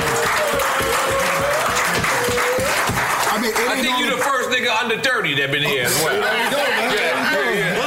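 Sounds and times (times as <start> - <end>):
audience applause: 0.0 - 4.4
speech: 4.8 - 7.7.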